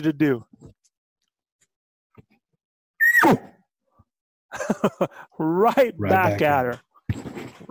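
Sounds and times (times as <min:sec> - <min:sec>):
speech: 0:00.0 - 0:00.5, 0:03.2 - 0:03.5, 0:04.5 - 0:07.7
laughter: 0:04.5 - 0:05.3, 0:05.9 - 0:06.6
person imitating a cow elk's bark: 0:06.0 - 0:06.4.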